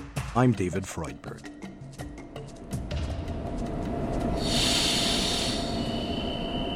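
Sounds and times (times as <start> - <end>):
speech: 0.4 - 1.6
steady low rumble of a train at a railway station: 2.6 - 6.7
loud hissing burst fading to a thin high whine: 4.4 - 6.2.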